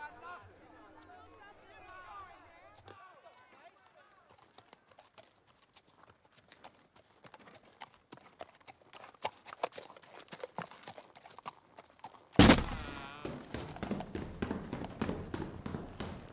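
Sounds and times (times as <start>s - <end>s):
horse hooves clip-clopping: 0.1s - 16.3s
loud broadband burst: 12.4s - 13.3s.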